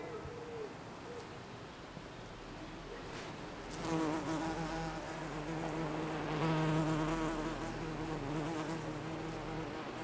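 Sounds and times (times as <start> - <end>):
bees buzzing in a garden on a sunny summer day in Jette Belgium: 3.7 - 10.0.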